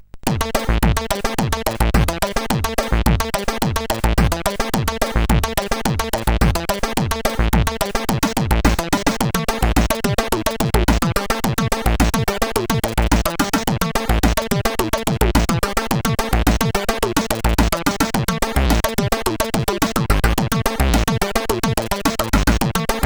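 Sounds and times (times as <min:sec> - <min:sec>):
funk music on a MOS CSG8580R5 sound chip: 0:00.3 - 0:23.0.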